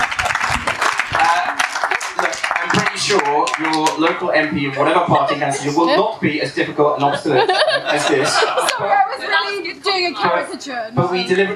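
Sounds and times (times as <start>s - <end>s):
many hands clapping in applause at a training session: 0.0s - 4.2s
laughter: 1.2s - 10.4s
speech: 3.1s - 11.5s.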